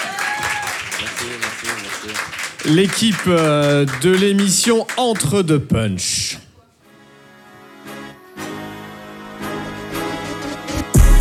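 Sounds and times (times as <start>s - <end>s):
live audience applauding warmly: 0.0s - 5.6s
speech: 1.0s - 6.4s.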